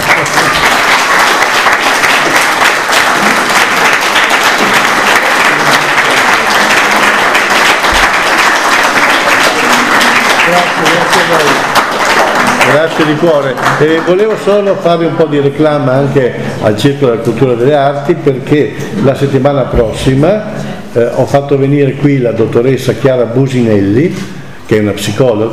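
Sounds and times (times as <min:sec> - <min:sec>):
crowd applauding a lecture: 0:00.0 - 0:14.8
speech: 0:12.7 - 0:25.5.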